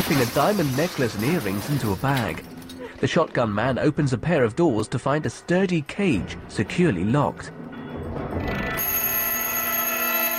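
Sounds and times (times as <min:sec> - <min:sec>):
speech: 0:00.1 - 0:07.6
timer going off during a robbery, continuous high electronic ringing: 0:07.7 - 0:10.3.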